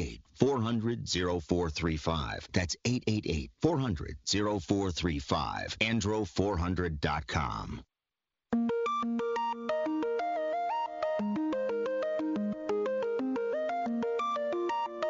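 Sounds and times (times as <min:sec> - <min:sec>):
speech: 0:00.0 - 0:07.9
electronic ringtone-style melody: 0:08.6 - 0:15.0.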